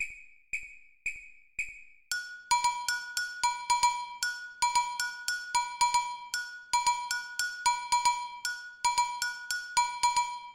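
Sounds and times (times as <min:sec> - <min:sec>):
samba bells: 0:02.1 - 0:10.5.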